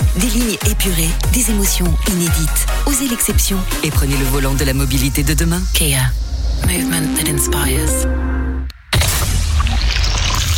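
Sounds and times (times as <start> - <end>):
speech: 0.2 - 8.2
sparkling Rivella soft drink being poured: 9.4 - 10.5.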